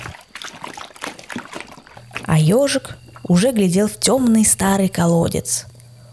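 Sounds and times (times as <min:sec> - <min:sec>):
paw splashing and stirring water in a shallow puddle: 0:00.0 - 0:03.3
speech: 0:02.4 - 0:05.7.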